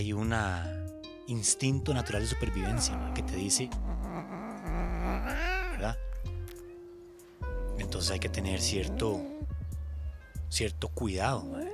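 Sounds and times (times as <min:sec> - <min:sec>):
speech: 0:00.0 - 0:04.4, 0:05.1 - 0:06.0, 0:07.9 - 0:09.5, 0:10.5 - 0:11.7
cat letting out a loud drawn-out growling yowl: 0:01.9 - 0:06.0, 0:07.8 - 0:09.6, 0:11.4 - 0:11.7.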